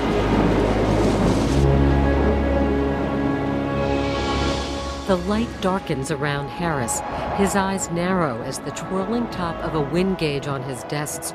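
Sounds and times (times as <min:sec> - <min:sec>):
heavy storm downpour of rain: 0:00.0 - 0:05.1
speech: 0:05.1 - 0:11.3.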